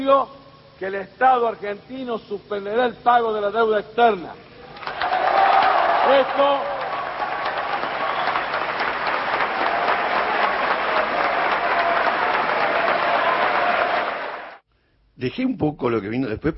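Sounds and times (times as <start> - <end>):
speech: 0.0 - 5.1, 6.1 - 6.8, 15.2 - 16.5
large crowd applauding after a political speech: 4.8 - 14.6.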